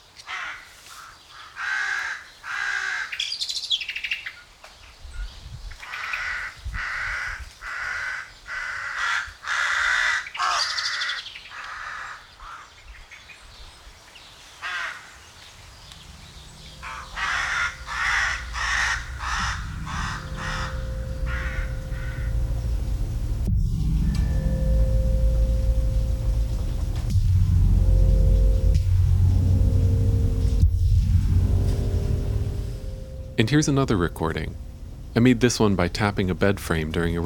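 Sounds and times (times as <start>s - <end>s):
several crows cawing in a forest in Denmark: 0.3s - 3.2s, 5.9s - 12.7s, 16.8s - 22.2s
low rumbles: 15.8s - 37.2s
speech: 33.5s - 37.2s.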